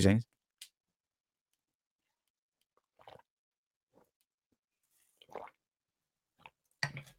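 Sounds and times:
person sipping a drink with slurps and swallows: 0:02.6 - 0:03.3, 0:05.0 - 0:05.7.

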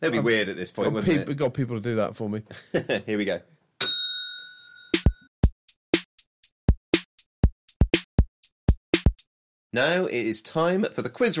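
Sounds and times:
speech: 0:00.0 - 0:03.6, 0:09.7 - 0:11.3
single bell ringing: 0:03.8 - 0:05.3
rapid steady run of sharp percussive beats: 0:04.9 - 0:09.3.

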